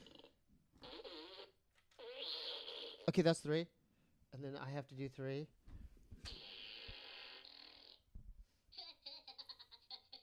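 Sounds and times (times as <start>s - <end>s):
buzzy fart sounds blown with the mouth: 0.0s - 3.1s, 6.2s - 8.0s
speech: 3.1s - 5.6s.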